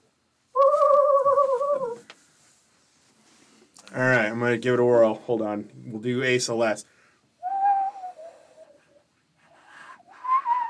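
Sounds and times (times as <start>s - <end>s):
person whistling an imitation of a loon call: 0.6s - 2.0s, 7.4s - 9.0s, 9.7s - 10.6s
speech: 4.0s - 7.0s.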